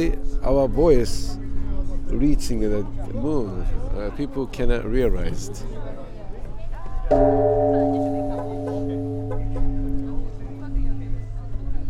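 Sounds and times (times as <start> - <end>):
speech: 0.0 - 1.4, 2.1 - 6.1, 7.1 - 8.1
large Buddhist temple bell struck and ringing: 0.0 - 4.4, 7.1 - 11.8.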